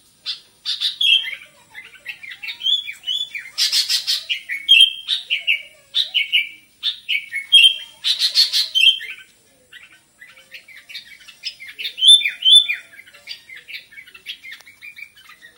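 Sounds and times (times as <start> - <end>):
sooty-headed bulbul singing with slurred whistles and scratchy chatter: 0.2 - 15.5.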